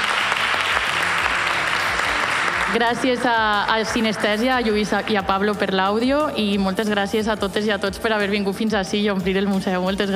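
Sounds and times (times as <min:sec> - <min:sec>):
audience applause in a museum: 0:00.0 - 0:03.2
speech: 0:02.7 - 0:10.1.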